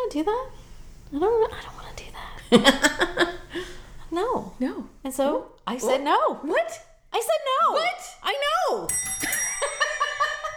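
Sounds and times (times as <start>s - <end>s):
speech: 0.1s - 9.3s
small bell ringing: 8.9s - 10.5s.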